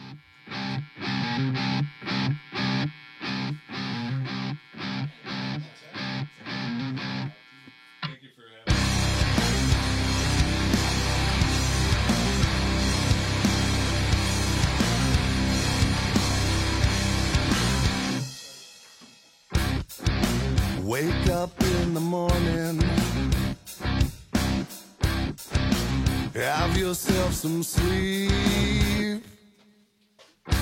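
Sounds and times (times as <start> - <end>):
distorted rock guitar chugging in staccato bursts: 0.0 - 29.2
full rock band playing: 8.7 - 18.4, 19.5 - 29.1
speech: 26.8 - 29.0.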